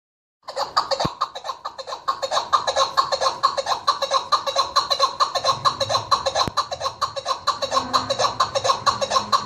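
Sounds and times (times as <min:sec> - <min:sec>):
partridge chattering call: 0:00.6 - 0:09.4.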